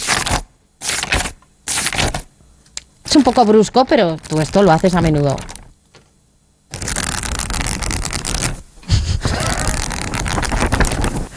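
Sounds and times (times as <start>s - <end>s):
pages being flipped quickly: 0.0s - 2.3s, 4.2s - 6.1s, 6.7s - 8.6s, 9.2s - 11.3s
speech: 3.1s - 5.6s.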